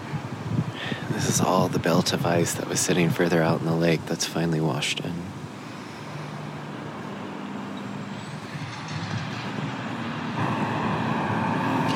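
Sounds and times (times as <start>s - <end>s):
garbage truck engine rumbling: 0.0s - 11.9s
speech: 1.1s - 5.4s.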